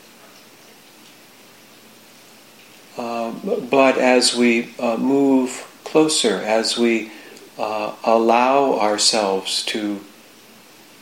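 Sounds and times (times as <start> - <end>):
steady soft rain: 0.0 - 11.0
speech: 3.3 - 10.1.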